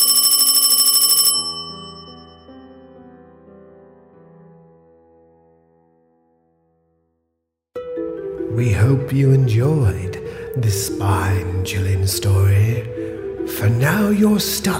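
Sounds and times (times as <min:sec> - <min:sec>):
old telephone bell ringing: 0:00.0 - 0:02.7
speech: 0:08.6 - 0:14.7.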